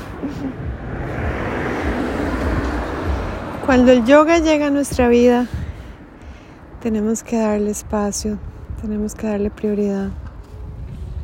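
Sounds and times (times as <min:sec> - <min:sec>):
car passing by: 0:00.0 - 0:06.8
speech: 0:00.2 - 0:01.2, 0:03.7 - 0:05.6, 0:06.8 - 0:10.2.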